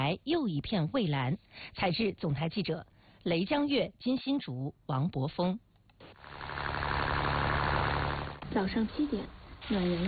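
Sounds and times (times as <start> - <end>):
speech: 0.1 - 6.5, 8.5 - 10.0
boat motor starting in a fishing harbor: 6.0 - 9.0.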